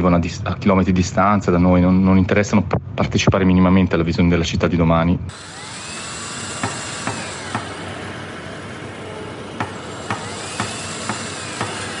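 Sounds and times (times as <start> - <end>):
speech: 0.0 - 5.7
constant roar of machinery at a construction site: 5.3 - 11.9
hammer blows at a construction site: 5.3 - 11.9.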